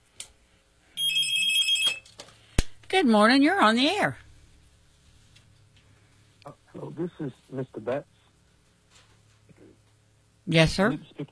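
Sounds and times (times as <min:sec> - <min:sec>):
telephone ringing with a high warbling electronic burst: 0:01.0 - 0:02.2
speech: 0:03.0 - 0:04.2, 0:07.0 - 0:08.2, 0:10.5 - 0:11.2.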